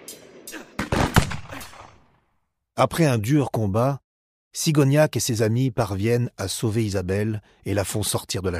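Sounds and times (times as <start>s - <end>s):
sharp gunshots with tail: 0.8s - 2.1s
speech: 2.8s - 8.5s.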